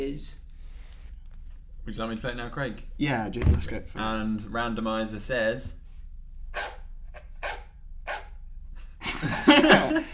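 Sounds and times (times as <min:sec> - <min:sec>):
speech: 0:00.1 - 0:00.4, 0:01.8 - 0:05.8
dog barking: 0:06.6 - 0:08.4
laughter: 0:09.0 - 0:10.1.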